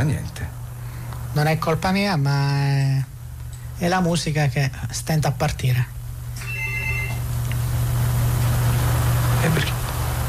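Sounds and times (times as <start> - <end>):
steady low hum: 0.0 - 10.2
speech: 1.4 - 3.1, 3.8 - 6.0, 9.4 - 9.8
telephone giving a short electronic ring: 6.4 - 7.3.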